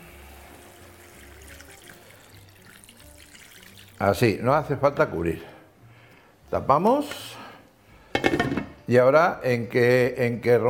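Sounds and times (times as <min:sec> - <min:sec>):
water poured into a cooking pot: 0:00.0 - 0:04.2
speech: 0:04.0 - 0:05.5, 0:06.5 - 0:07.3, 0:08.9 - 0:10.6.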